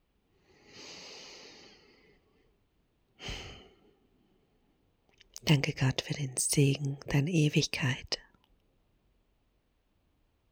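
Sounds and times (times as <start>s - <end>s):
slow deep breath drawn in: 0.4s - 2.5s, 3.2s - 3.9s
speech: 5.5s - 8.2s.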